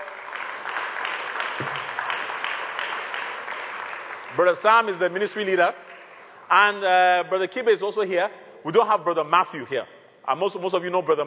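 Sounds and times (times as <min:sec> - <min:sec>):
crowd clapping at a religious gathering: 0:00.0 - 0:06.5
speech: 0:04.4 - 0:05.8, 0:06.5 - 0:11.2.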